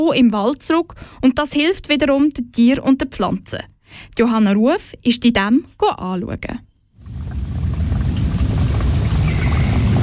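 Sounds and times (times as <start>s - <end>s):
speech: 0.0s - 6.7s
small forest stream babbling: 7.0s - 10.0s.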